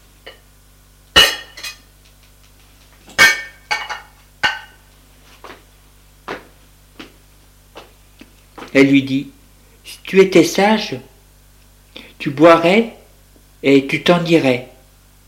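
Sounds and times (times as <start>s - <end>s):
bottle and two glasses clinking while fetched from a living room corner: 3.2s - 4.8s
speech: 8.7s - 11.1s, 12.2s - 13.0s, 13.6s - 14.7s.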